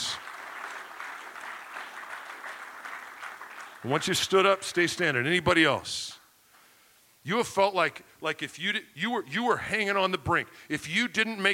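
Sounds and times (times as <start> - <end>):
crowd applauding: 0.0 - 4.8
speech: 3.8 - 6.2, 7.2 - 11.5.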